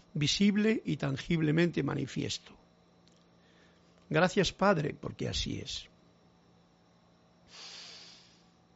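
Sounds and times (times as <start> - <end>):
speech: 0.2 - 2.6, 4.1 - 5.9
deep breath: 3.4 - 4.0, 7.4 - 8.6.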